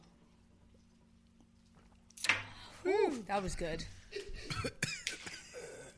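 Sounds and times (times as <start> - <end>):
speech: 2.8 - 4.0
person coughing: 4.4 - 5.9.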